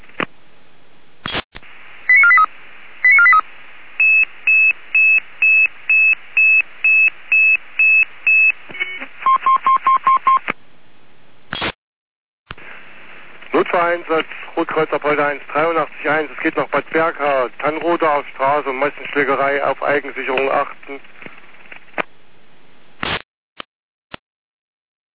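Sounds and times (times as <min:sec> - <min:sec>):
hissy band-limited radio channel: 0:01.2 - 0:09.1, 0:12.5 - 0:21.1, 0:23.0 - 0:23.2
radio pager beeps: 0:02.1 - 0:02.5, 0:03.1 - 0:03.4, 0:04.0 - 0:10.4
speech: 0:13.9 - 0:21.2.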